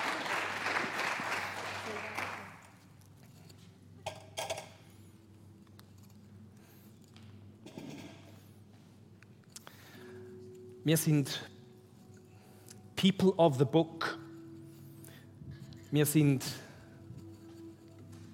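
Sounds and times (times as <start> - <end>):
audience applause for people who told how they read the Bible: 0.0 - 2.8
speech: 10.8 - 11.5, 13.0 - 14.2, 15.9 - 16.6.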